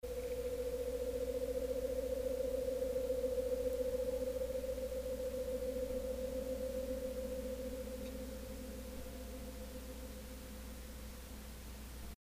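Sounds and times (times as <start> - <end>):
clean harmonic tone: 0.0 - 12.2.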